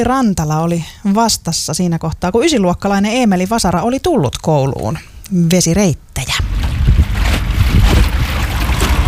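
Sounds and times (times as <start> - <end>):
speech: 0.0 - 6.6
boat travelling across a lake: 6.4 - 9.0
wind rush: 6.4 - 9.0.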